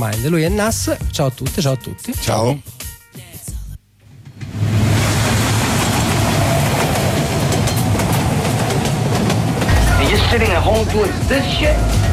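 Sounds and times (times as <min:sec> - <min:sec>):
speech: 0:00.0 - 0:03.2, 0:10.3 - 0:12.1
train to Harlem riding on rails: 0:04.0 - 0:12.1.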